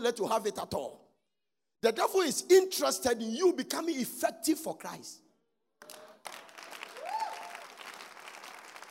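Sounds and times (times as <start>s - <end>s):
speech: 0.0s - 1.0s, 1.8s - 5.2s
crowd applause: 5.8s - 8.9s.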